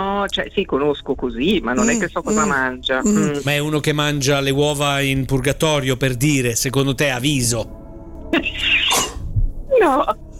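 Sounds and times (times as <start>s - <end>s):
speech: 0.2s - 9.1s, 9.8s - 10.2s
brief vocal sound in a rising and falling tone: 1.8s - 3.5s
person with allergies sneezing into a microphone: 1.8s - 3.5s, 8.8s - 9.2s.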